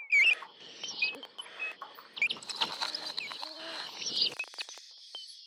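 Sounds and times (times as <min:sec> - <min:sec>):
birds chirping: 0:00.1 - 0:04.4.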